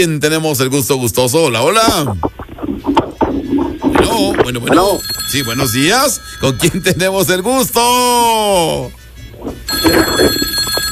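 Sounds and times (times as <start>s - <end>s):
speech: 0.0s - 3.0s, 4.0s - 9.0s, 9.8s - 10.8s
telephone ringing for an incoming call: 4.0s - 8.0s, 9.6s - 10.8s.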